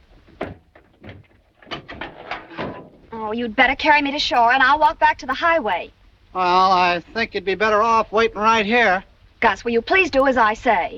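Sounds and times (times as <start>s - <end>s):
soft irregular clunks and scrapes of a car bonnet: 0.0s - 3.2s
brief louder knocks: 0.0s - 3.4s
car bonnet being lifted open: 0.1s - 3.2s
speech: 3.2s - 10.9s.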